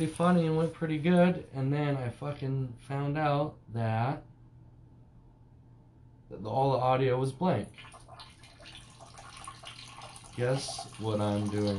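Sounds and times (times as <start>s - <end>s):
speech: 0.0s - 4.3s, 6.3s - 7.9s, 10.4s - 11.7s
water poured steadily into a toilet bowl: 7.8s - 11.7s.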